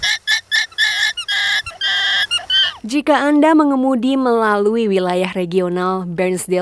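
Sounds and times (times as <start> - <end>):
alpacas squeaking in open paddocks: 0.0 - 2.9
speech: 2.8 - 6.6.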